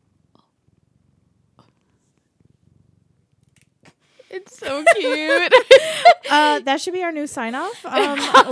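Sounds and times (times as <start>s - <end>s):
cat purring: 0.0s - 4.6s
speech: 4.3s - 8.5s
laughter: 4.6s - 6.6s, 7.8s - 8.5s.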